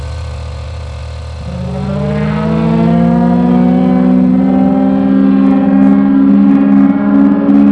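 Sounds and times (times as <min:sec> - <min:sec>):
siren: 0:01.4 - 0:07.7.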